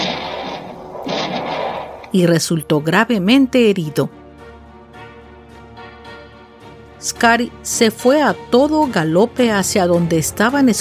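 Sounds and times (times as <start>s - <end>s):
gunshot sound effect of gunfire during a bandit ambush on a caravan: 0.0s - 2.2s
speech: 2.1s - 4.2s, 7.0s - 10.8s.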